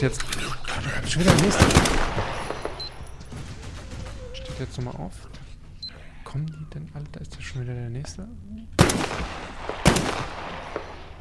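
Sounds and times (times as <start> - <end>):
speech: 0.0 - 2.3, 4.6 - 5.4, 6.3 - 10.9
video game gunshots with short tail: 1.1 - 4.6, 8.8 - 11.1.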